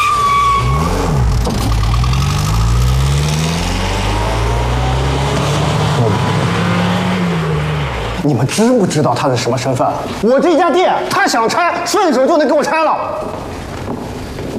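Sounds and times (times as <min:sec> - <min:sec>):
car engine revving as the car drives off: 0:00.0 - 0:08.3
speech: 0:08.3 - 0:13.6.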